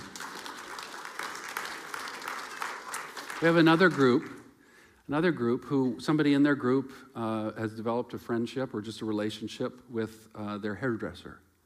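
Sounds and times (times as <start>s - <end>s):
audience clapping in a church: 0.0s - 4.6s
speech: 3.4s - 4.4s, 5.1s - 11.4s.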